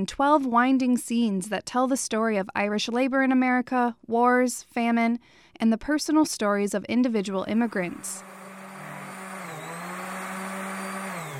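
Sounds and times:
speech: 0.0s - 8.4s
power tool motor whining in construction space: 7.6s - 11.3s.

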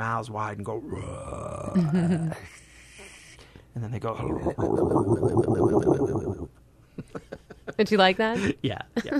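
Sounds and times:
speech: 0.0s - 2.7s, 3.8s - 9.1s
person vocally imitating an alligator roar hiss and gurgle: 0.9s - 2.5s, 4.2s - 6.5s.

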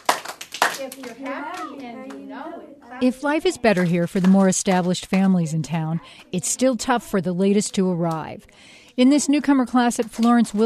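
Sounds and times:
elementary school children clapping hands: 0.0s - 2.3s, 3.4s - 5.4s, 9.8s - 10.6s
speech: 0.8s - 10.6s.

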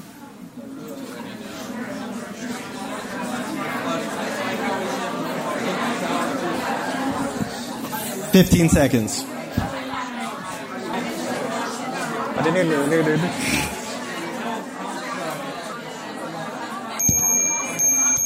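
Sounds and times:
many people chattering while talking in teams during a timed task: 0.0s - 18.2s
speech: 8.4s - 9.4s, 12.4s - 13.7s
bright sustained bell tone: 17.0s - 18.2s.

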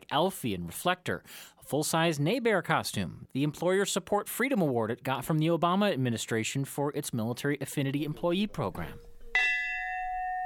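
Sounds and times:
speech: 0.1s - 9.1s
life bell strike rung for a new life insurance policy: 9.2s - 10.4s.

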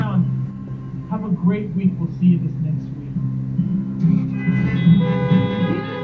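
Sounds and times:
speech: 1.3s - 3.3s
several car horns honking: 4.0s - 6.0s.

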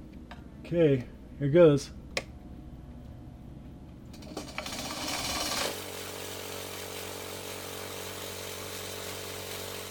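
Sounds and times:
speech: 0.7s - 2.0s
small lab grinder blending vials of mosquitoes for West Nile virus testing: 4.1s - 9.8s.

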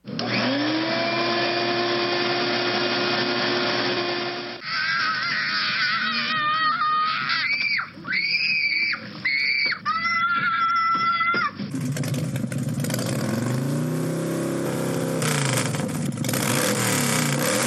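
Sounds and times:
shop vac motor spinning up and running: 0.0s - 4.6s, 11.6s - 17.6s
child high-pitched screaming: 4.6s - 11.6s.

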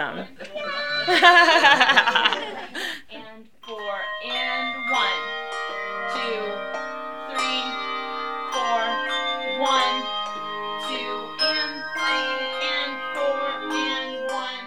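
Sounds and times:
voices: 0.0s - 14.6s
people laughing: 0.4s - 3.0s
handbell choir playing: 0.6s - 2.6s, 3.6s - 14.6s.

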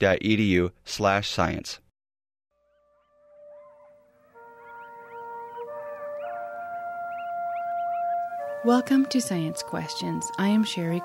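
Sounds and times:
speech: 0.0s - 1.8s, 8.6s - 11.0s
chorus of coyotes Canis latrans howling and yipping: 2.8s - 11.0s.

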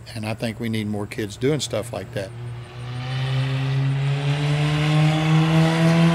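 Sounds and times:
speech: 0.1s - 2.5s
race car engine droning on practice laps on a track: 1.5s - 6.1s.

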